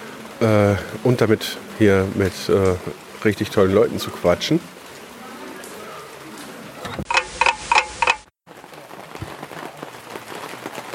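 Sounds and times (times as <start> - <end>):
rain pattering outdoors in bad weather: 0.0 - 10.9
speech: 0.4 - 4.7
ticking beats: 7.0 - 8.3.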